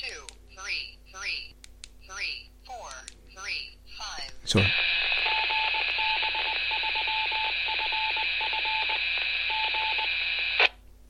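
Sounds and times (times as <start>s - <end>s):
constant radio hiss: 4.0s - 10.8s
speech: 4.5s - 4.8s
Morse code identification tones from an amateur radio repeater: 5.2s - 10.1s.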